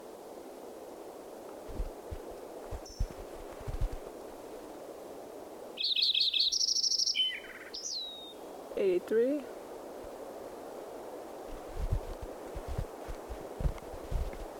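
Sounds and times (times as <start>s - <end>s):
hiss: 0.0s - 14.5s
soft low thumps: 1.7s - 4.1s, 11.5s - 14.5s
fox sparrow singing: 2.8s - 3.2s, 5.8s - 8.5s
speech: 8.8s - 9.6s.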